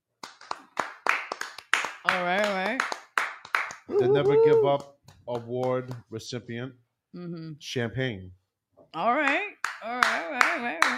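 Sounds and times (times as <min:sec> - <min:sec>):
sharp forceful hand claps: 0:00.2 - 0:06.2, 0:09.3 - 0:10.9
speech: 0:02.0 - 0:03.0, 0:03.9 - 0:10.9
person making wavering drawn-out vocal sound: 0:03.9 - 0:04.8.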